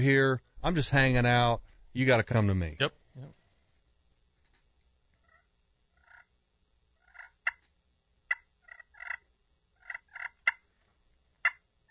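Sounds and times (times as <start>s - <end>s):
speech: 0.0s - 3.4s
turkey call purring and clucking: 5.2s - 6.3s, 7.0s - 7.6s, 8.3s - 10.7s, 11.4s - 11.9s.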